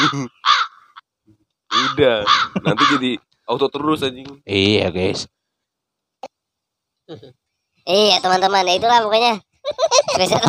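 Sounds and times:
speech: 0.0 - 0.5, 1.7 - 5.4, 7.1 - 10.4
crow cawing harshly: 0.0 - 1.1, 1.7 - 3.2
laughter: 2.4 - 3.1, 9.7 - 10.4.

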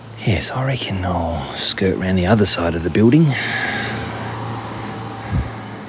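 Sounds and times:
low car engine hum: 0.0 - 5.8
road noise: 0.0 - 5.8
speech: 0.2 - 3.8
car driving past a property: 3.3 - 5.8.

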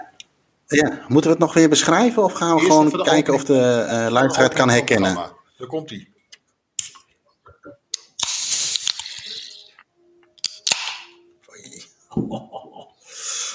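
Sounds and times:
speech: 0.7 - 6.1
drink can opened with metallic crack and fizzing hiss: 8.0 - 9.8
laughter: 12.1 - 13.0.

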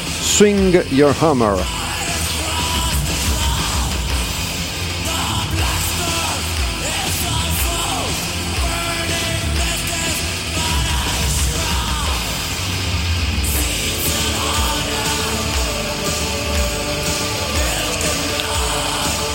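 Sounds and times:
dense distorted extreme metal guitars: 0.0 - 19.3
pounding extreme metal drums: 0.0 - 19.3
speech: 0.4 - 1.8
group of voices chanting and bellowing in unison: 1.6 - 19.3.

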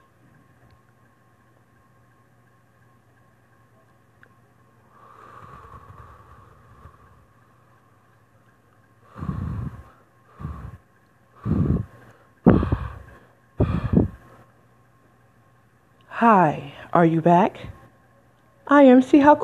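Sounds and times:
deep breathing through the nose during a guided relaxation exercise: 4.9 - 7.8, 9.0 - 14.5
speech: 16.2 - 17.8, 18.7 - 19.4.

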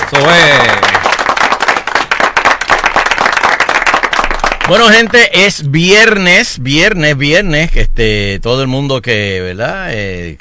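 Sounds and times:
crowd applause with dense rapid clapping: 0.0 - 4.9
speech: 0.1 - 0.9, 4.7 - 10.3.

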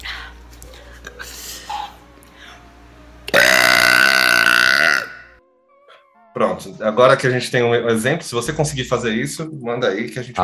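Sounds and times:
long loud burp with a rough resonant rasp: 3.3 - 5.4
speech: 6.4 - 10.4.

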